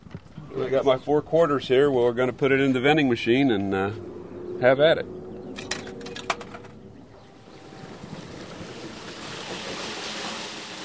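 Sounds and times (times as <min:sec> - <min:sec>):
speech: 0:00.6 - 0:05.2
sharp metallic clanks: 0:05.5 - 0:06.8
water pouring into a tank at a water filling station: 0:07.5 - 0:10.8.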